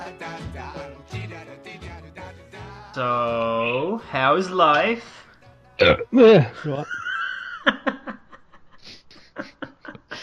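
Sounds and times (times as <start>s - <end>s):
speech: 0.1s - 1.8s, 3.0s - 5.2s, 5.8s - 7.0s
loud burp: 5.8s - 6.4s
laughter: 6.3s - 10.2s.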